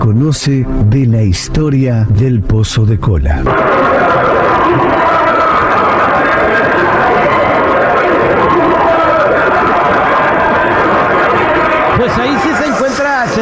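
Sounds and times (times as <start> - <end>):
speech: 0.2 - 5.2, 12.1 - 12.6
many voices wailing and screaming in distress: 3.5 - 13.4.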